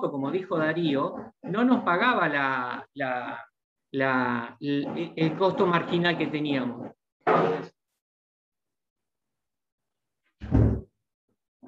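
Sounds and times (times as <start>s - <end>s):
speech: 0.0s - 7.7s
door being closed during an agricultural workshop: 10.4s - 10.9s
knock: 10.4s - 10.9s.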